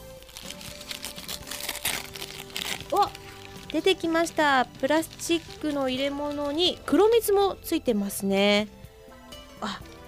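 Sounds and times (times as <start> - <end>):
brown paper wrapping crinkling and rustling as it is unwrapped from a souvenir treat: 0.2 - 6.8
speech: 2.9 - 8.8, 9.6 - 9.9.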